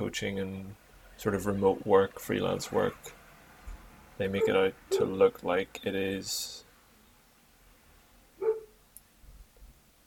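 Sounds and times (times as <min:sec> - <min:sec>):
speech: 0:00.1 - 0:03.2, 0:04.2 - 0:06.6
dog barking: 0:08.4 - 0:08.8.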